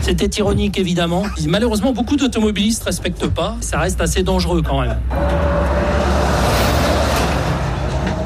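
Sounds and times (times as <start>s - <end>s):
speech: 0.1s - 6.1s
large truck passing on a highway: 5.0s - 8.2s.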